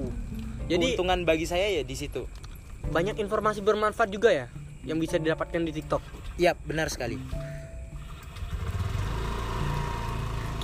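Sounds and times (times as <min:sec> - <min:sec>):
speech: 0:00.7 - 0:07.4
motorcycle engine passing outside: 0:07.9 - 0:10.6.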